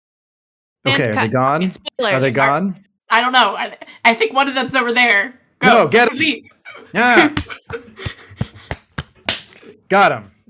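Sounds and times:
speech: 0.9 - 8.2, 9.9 - 10.4
punchy thwacks made by mouth imitating punches: 7.2 - 9.6.

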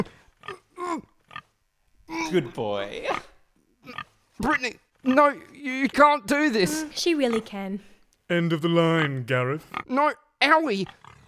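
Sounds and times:
speech: 0.0 - 0.2, 0.9 - 1.1, 2.2 - 11.0
pig grunting and oinking: 0.0 - 1.5, 2.1 - 7.6, 9.6 - 10.0, 10.8 - 11.2.

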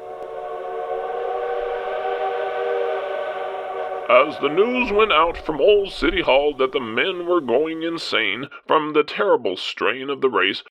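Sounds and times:
train whistle blowing: 0.0 - 7.5
speech: 4.1 - 10.6.

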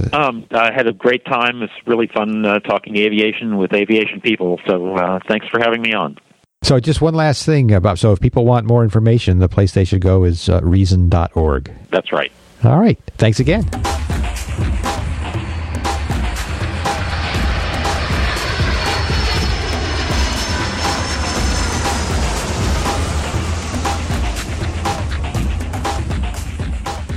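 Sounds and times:
speech: 0.0 - 14.0
didgeridoo drone played as a short jingle: 13.6 - 27.1.

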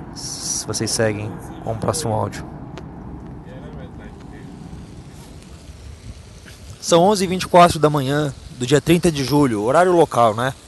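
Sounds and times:
speech: 0.2 - 2.6, 6.9 - 10.6
water gushing from a ground-level fountain in an open square: 4.3 - 10.6.

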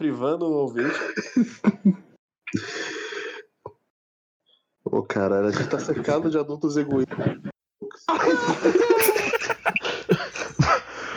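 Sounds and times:
speech: 0.0 - 2.8, 5.0 - 9.4
laughter: 8.4 - 10.6
person coughing harshly: 9.0 - 10.3
throat clearing: 9.0 - 10.3.

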